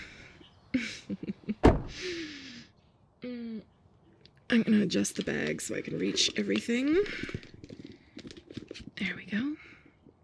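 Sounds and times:
speech: 0.7s - 1.3s, 4.5s - 7.5s
door being pulled shut as someone gets in: 1.6s - 2.0s
small clicks and rustles: 4.2s - 10.2s.

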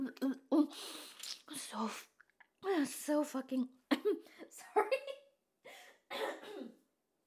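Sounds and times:
speech: 0.1s - 2.1s, 2.8s - 4.9s
person coughing from saliva down the wrong way: 6.1s - 6.8s.

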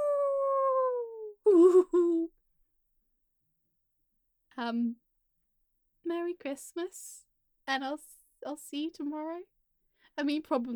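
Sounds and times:
person imitating a howling dog: 0.0s - 2.3s
speech: 4.6s - 5.0s, 6.0s - 9.5s, 10.2s - 10.7s.

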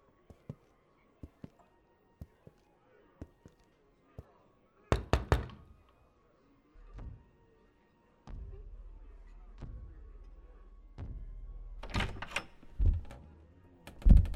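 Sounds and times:
heavy knocks on a big kitchen door: 5.0s - 5.6s.

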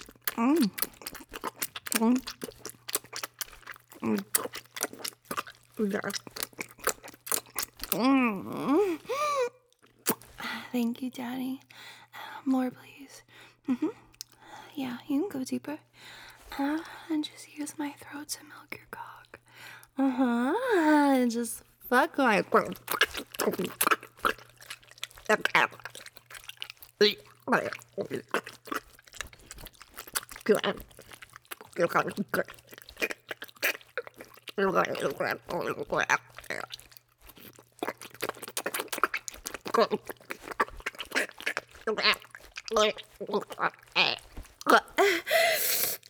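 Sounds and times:
thick drool dripping: 0.0s - 9.2s, 22.2s - 46.0s
faint steady hum: 0.0s - 46.0s
speech: 0.4s - 1.0s, 2.0s - 2.6s, 4.0s - 4.6s, 5.8s - 6.4s, 8.0s - 9.2s, 10.7s - 11.7s, 12.4s - 12.9s, 13.7s - 14.0s, 14.8s - 15.9s, 16.6s - 18.9s, 20.0s - 24.0s, 25.3s - 26.0s, 27.0s - 28.6s, 30.5s - 30.9s, 31.8s - 32.6s, 34.6s - 36.3s, 39.8s - 40.2s, 41.9s - 44.1s.

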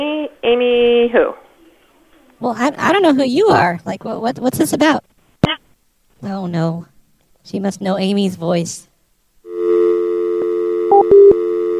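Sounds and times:
speech: 0.5s - 1.4s, 2.4s - 5.1s, 6.2s - 8.9s
telephone dial tone played over a call as a prank: 9.5s - 11.7s.

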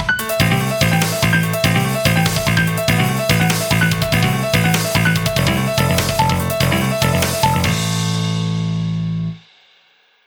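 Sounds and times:
backing track for shred guitar exercise: 0.2s - 9.4s.

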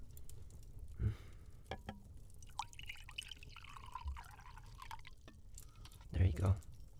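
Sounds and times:
water pouring into a glass: 2.3s - 6.8s.

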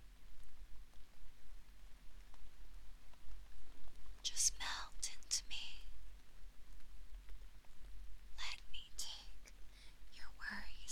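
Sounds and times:
low rumble: 0.0s - 10.8s
soft rain pattering against a window pane: 0.0s - 10.8s.

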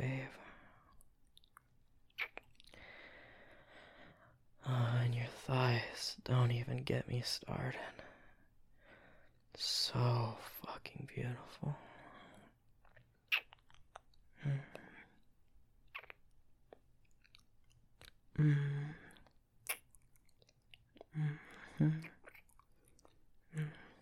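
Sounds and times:
wet licking mouth sounds: 1.4s - 2.8s, 12.8s - 14.2s, 15.9s - 18.2s, 19.1s - 23.2s
speech: 4.6s - 8.0s, 9.6s - 11.9s, 14.4s - 14.8s, 18.4s - 19.0s.

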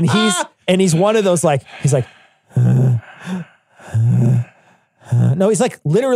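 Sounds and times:
speech: 0.0s - 4.5s, 5.1s - 6.1s
fat man breathing heavily with wheezing and rasping: 0.8s - 5.3s.

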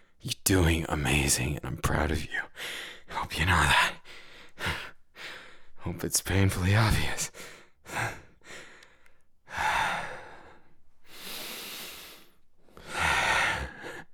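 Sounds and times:
speech: 0.2s - 4.0s, 5.8s - 8.1s
heavy breathing during a workout: 2.5s - 3.2s, 4.0s - 5.8s, 7.3s - 14.1s.

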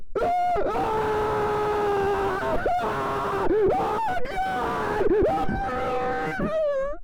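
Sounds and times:
muffled scream: 0.2s - 7.0s.

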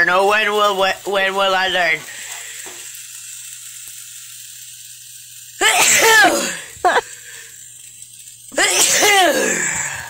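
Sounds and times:
speech: 0.0s - 2.2s, 5.6s - 7.1s, 8.6s - 9.9s
faint steady hum: 0.0s - 10.0s
person sneezing from pepper while cooking: 5.6s - 7.0s, 8.6s - 10.0s.

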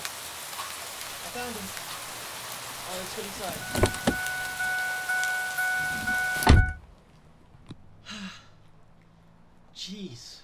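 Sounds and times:
heavy rain: 0.0s - 7.2s
speech: 1.4s - 2.0s, 2.9s - 4.1s, 9.8s - 10.4s
door thumping shut: 3.7s - 4.3s, 6.4s - 6.8s.

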